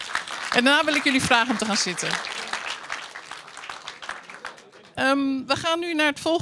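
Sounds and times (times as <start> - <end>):
crowd applauding: 0.0 - 5.0
speech: 0.5 - 2.4, 5.0 - 6.4.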